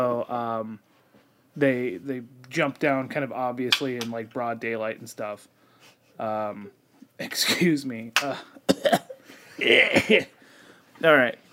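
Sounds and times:
speech: 0.0 - 0.9, 1.6 - 9.0, 9.6 - 10.4, 11.0 - 11.4
harsh raspy coughing fit: 8.2 - 10.3.

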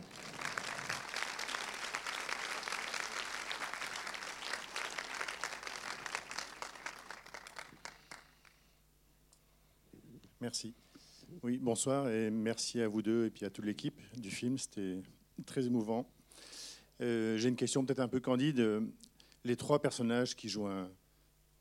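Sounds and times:
audience applause at a film screening: 0.0 - 8.6
speech: 10.4 - 16.2, 17.0 - 21.0.

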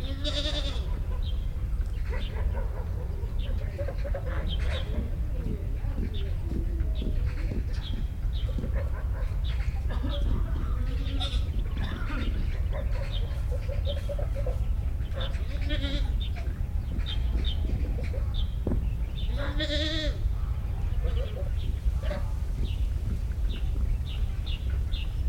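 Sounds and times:
faint voices: 0.0 - 25.2
goat-like bleats: 0.1 - 0.8, 9.9 - 12.4, 15.6 - 16.2, 19.4 - 20.2
quacking calls: 0.1 - 1.0, 3.7 - 18.5, 19.3 - 20.2
constant low construction rumble: 2.9 - 25.2.

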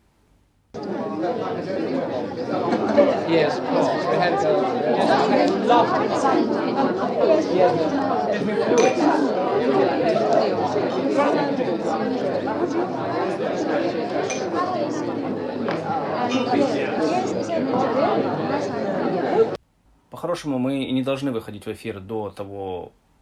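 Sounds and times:
dense crowd chatter in a busy pub: 0.8 - 19.6
laughter: 0.8 - 19.6
speech: 0.8 - 23.0
glasses and dishes clinking in a pub: 8.7 - 9.4, 14.2 - 17.9.

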